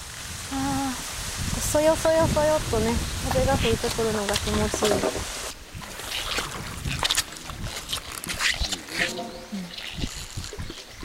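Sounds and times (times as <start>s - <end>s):
river water splashing and rushing: 0.0s - 11.0s
speech: 1.7s - 5.4s
wooden oars creaking and squeaking as a raft is rowed down a river in Wakayama Prefecture: 3.6s - 11.0s.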